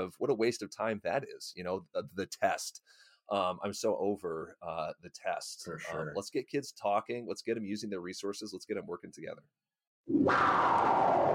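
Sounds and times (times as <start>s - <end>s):
speech: 0.0s - 11.3s
whooshing spaceship sound effect: 10.1s - 11.3s.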